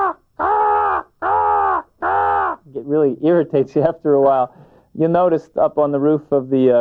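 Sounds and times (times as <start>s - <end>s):
young crows nasal begging calls: 0.0s - 2.6s
speech: 2.8s - 6.7s.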